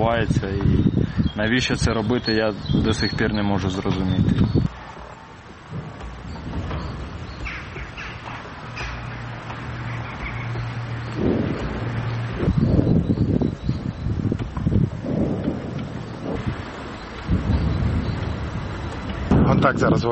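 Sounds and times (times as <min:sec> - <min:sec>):
speech: 0:00.0 - 0:04.7, 0:19.6 - 0:20.1
steady noise: 0:00.0 - 0:20.1
distant explosions: 0:02.8 - 0:20.1
multiple rocket launcher fire: 0:11.2 - 0:12.4.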